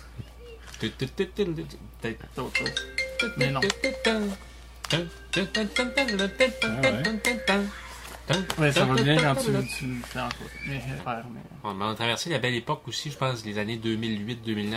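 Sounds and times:
speech: 0.8s - 14.7s
person humming a phone ringtone melody: 2.6s - 9.7s.

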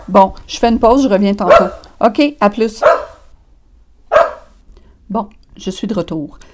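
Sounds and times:
speech: 0.1s - 3.0s, 5.2s - 6.5s
dog barking: 1.4s - 1.9s, 2.8s - 3.3s, 4.1s - 4.6s.

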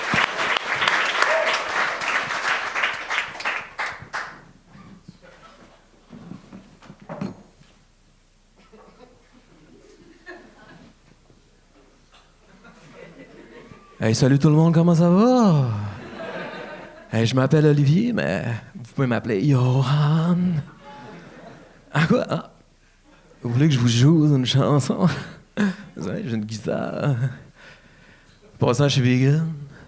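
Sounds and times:
crowd applauding: 0.0s - 4.5s
scattered claps: 0.0s - 4.5s
light chuckles: 8.6s - 11.0s
speech: 14.0s - 15.8s, 17.2s - 20.7s, 22.0s - 22.5s, 23.4s - 27.4s, 28.6s - 29.6s.

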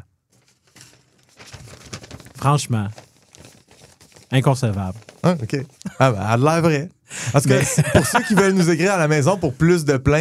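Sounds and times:
paper letter rustling and crinkling: 0.3s - 6.3s
speech: 2.4s - 3.0s, 4.3s - 10.1s
laughter: 7.2s - 9.6s.

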